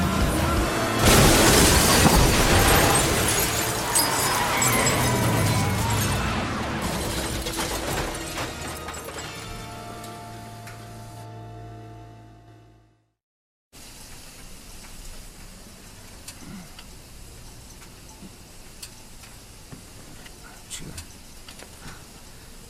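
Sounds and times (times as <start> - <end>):
pickup truck crashing into a car: 0.2 - 9.9
glass breaking in a car collision: 1.0 - 9.7
metal crunching in a car collision: 1.0 - 10.1.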